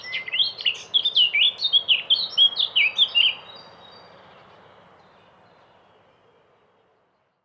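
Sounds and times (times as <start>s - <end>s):
Eurasian blackcap singing fluty phrases: 0.0s - 3.7s.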